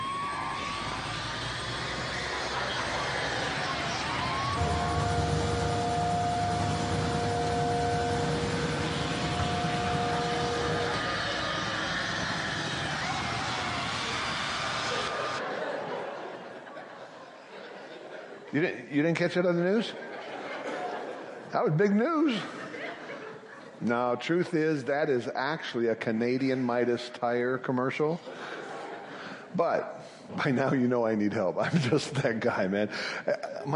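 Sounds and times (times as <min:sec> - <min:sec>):
laughter: 0:00.0 - 0:06.0, 0:09.5 - 0:18.6, 0:19.8 - 0:23.9, 0:28.2 - 0:33.7
siren-like wails: 0:00.0 - 0:15.5
speech: 0:18.6 - 0:20.1, 0:21.5 - 0:22.6, 0:23.8 - 0:28.6, 0:29.5 - 0:33.7.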